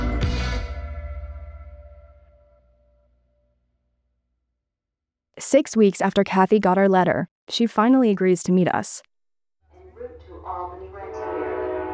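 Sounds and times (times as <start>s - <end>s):
speech: 5.4s - 9.1s
train rumbling past with a low steady roar: 9.8s - 11.9s.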